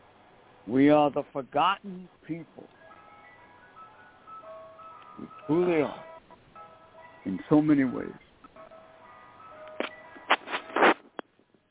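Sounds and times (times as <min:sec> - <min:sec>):
speech: 0:00.7 - 0:02.8, 0:05.2 - 0:06.1, 0:07.2 - 0:08.2
tinny ice cream truck jingle playing outside: 0:02.8 - 0:10.8.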